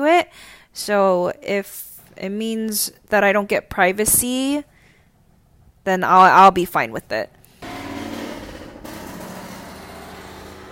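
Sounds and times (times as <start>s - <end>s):
speech: 0.0s - 4.7s, 5.8s - 7.4s
car engine rumbling loudly: 7.6s - 10.7s.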